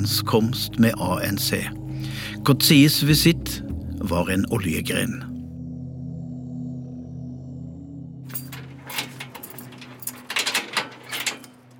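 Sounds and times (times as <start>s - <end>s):
speech: 0.0s - 5.3s
low steady hum: 0.0s - 11.7s
keys jangling and clinking: 8.3s - 11.7s
locks clanking on heavy prison security doors: 8.3s - 11.7s.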